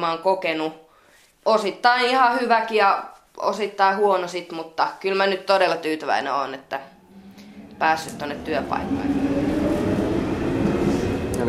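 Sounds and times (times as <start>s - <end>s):
speech: 0.0s - 0.8s, 1.4s - 6.9s, 7.8s - 9.3s
metro train pulling away from station: 6.8s - 11.4s.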